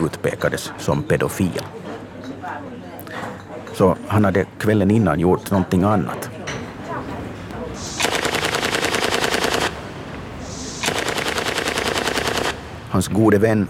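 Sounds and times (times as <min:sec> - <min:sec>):
speech: 0:00.0 - 0:01.9, 0:03.8 - 0:06.3, 0:12.9 - 0:13.6
low murmur: 0:00.0 - 0:13.6
replica automatic pistols firing blank cartridges: 0:07.9 - 0:09.8, 0:10.8 - 0:12.6.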